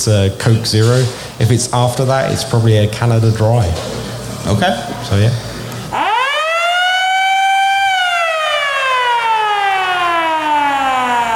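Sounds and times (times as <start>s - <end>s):
speech: 0.0s - 5.5s
air raid siren winding up and down: 5.9s - 11.3s.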